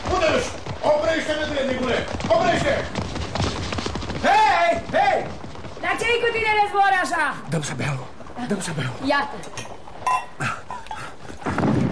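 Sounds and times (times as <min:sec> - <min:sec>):
horse hooves clip-clopping pulling a cart: 0:00.0 - 0:11.9
speech: 0:00.4 - 0:03.0, 0:04.7 - 0:09.8.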